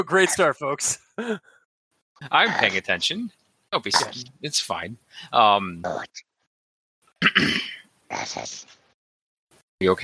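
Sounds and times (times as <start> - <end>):
speech: 0.0 - 1.6, 2.2 - 6.3, 7.2 - 8.8, 9.8 - 10.0
person clearing throat: 4.0 - 4.2, 7.2 - 8.6.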